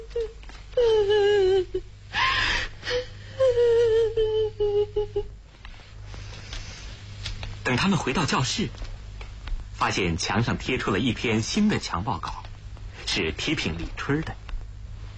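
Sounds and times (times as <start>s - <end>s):
person crying sadly in long wavering wails: 0.0s - 5.3s
steady low hum: 0.0s - 15.1s
speech: 7.8s - 8.9s, 9.8s - 12.4s, 13.2s - 14.4s.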